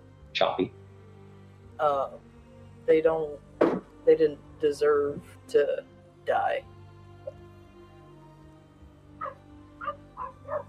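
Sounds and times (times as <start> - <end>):
speech: 0.4 - 0.8, 1.8 - 2.3, 2.9 - 6.7
dogs barking: 9.2 - 10.6.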